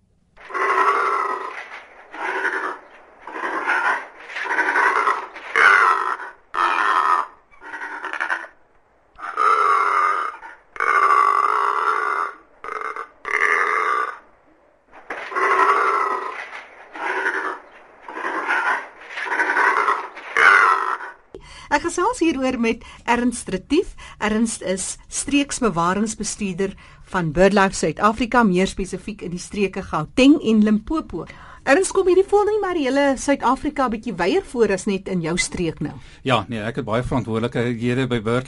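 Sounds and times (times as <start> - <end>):
secretarybird calling in deep guttural croaks and grunts: 0.4 - 22.7
speech: 22.0 - 38.4.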